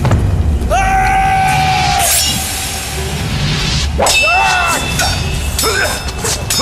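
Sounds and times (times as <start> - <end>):
rumbling battle din: 0.0 - 5.1
swords clashing as armoured warriors fight in a battle: 4.0 - 6.5.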